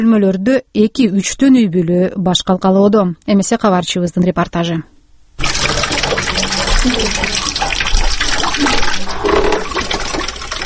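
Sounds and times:
speech: 0:00.0 - 0:06.2, 0:06.8 - 0:07.5
collected leaking rainwater being poured out: 0:05.4 - 0:10.6.

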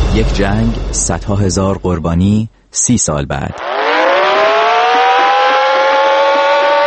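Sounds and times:
speech: 0:00.2 - 0:03.7
air raid warning siren sounding a red alert: 0:03.5 - 0:06.8.

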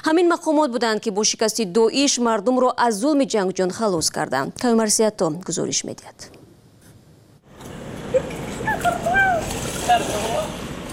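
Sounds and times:
speech: 0:00.0 - 0:06.4
river water flowing through a canal: 0:08.1 - 0:10.9.

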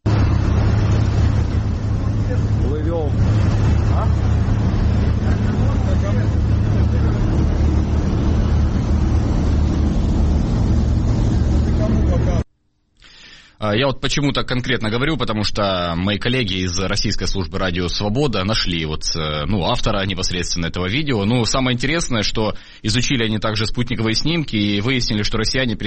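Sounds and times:
ferry motors droning with military trucks on board: 0:00.0 - 0:12.5
speech: 0:13.6 - 0:25.8.

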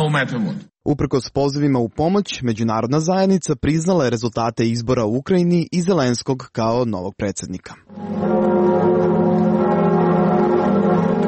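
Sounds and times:
speech: 0:00.1 - 0:08.3
large cathedral church bells pealing: 0:07.9 - 0:11.2.

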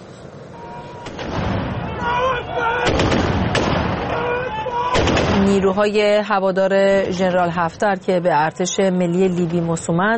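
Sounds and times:
explosions from airstrikes: 0:01.0 - 0:02.0, 0:02.8 - 0:05.8
speech: 0:05.5 - 0:10.1.

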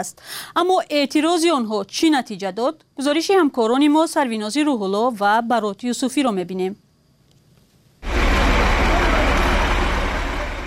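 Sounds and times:
speech: 0:00.0 - 0:06.8
heavy cargo truck rumbling along a street: 0:08.0 - 0:10.6.

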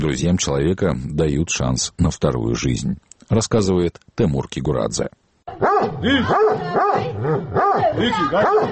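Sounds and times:
speech: 0:00.0 - 0:08.7
large Caucasian shepherd dog barking furiously: 0:05.6 - 0:08.7.

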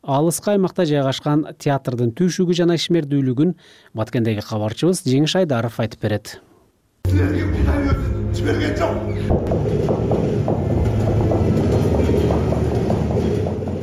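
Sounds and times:
speech: 0:00.1 - 0:07.6, 0:08.5 - 0:09.9
trains rumbling past from west to east: 0:07.6 - 0:13.8
rhythmic train wagon clicks: 0:09.4 - 0:13.8.

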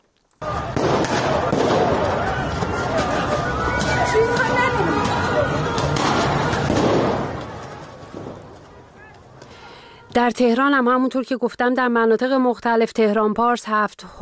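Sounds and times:
people moving about: 0:00.0 - 0:10.6
gunshots on a street during a protest in Yasuj, Iran: 0:00.4 - 0:08.7
agitated crowd of protesters shouting: 0:00.4 - 0:09.7
speech: 0:10.2 - 0:14.2.

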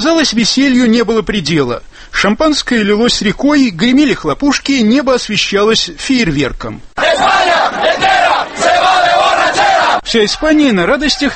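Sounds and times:
speech: 0:00.0 - 0:08.4, 0:09.5 - 0:11.3
crowd of fans chanting a traditional celebratory cheer for winning athletes: 0:07.0 - 0:10.5.

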